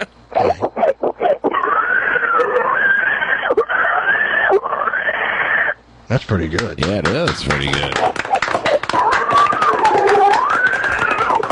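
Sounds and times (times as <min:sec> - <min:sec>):
person imitating pig grunting snorts: 0:00.0 - 0:02.8
person imitating a long high-pitched pig squeal: 0:00.0 - 0:05.8, 0:07.9 - 0:11.5
speech: 0:06.1 - 0:08.1.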